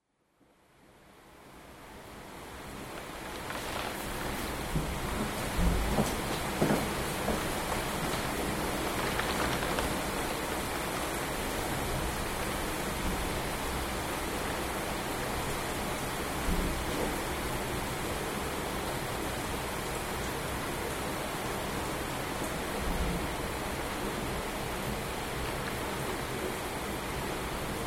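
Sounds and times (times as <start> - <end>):
rain at home: 0.4 - 27.8
rumbling at home: 2.9 - 10.7.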